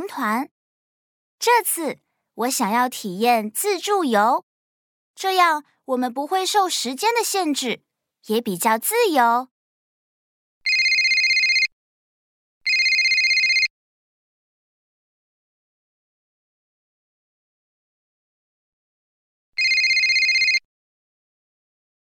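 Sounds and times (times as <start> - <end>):
speech: 0.1 - 0.6, 1.4 - 4.5, 5.2 - 9.5
telephone ringing with an electronic tone: 10.7 - 11.7, 12.7 - 13.7, 19.6 - 20.7.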